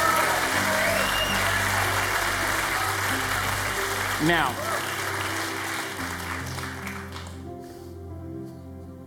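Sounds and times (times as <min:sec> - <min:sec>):
shouts from audience: 0:00.0 - 0:01.8
audience clapping and cheering: 0:00.0 - 0:07.6
speech: 0:04.2 - 0:04.8.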